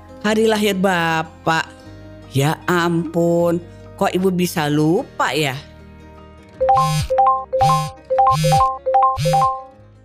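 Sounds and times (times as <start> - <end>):
speech: 0.2 - 5.7, 6.8 - 9.6
phone notification chimes for social media friend requests: 6.6 - 9.7.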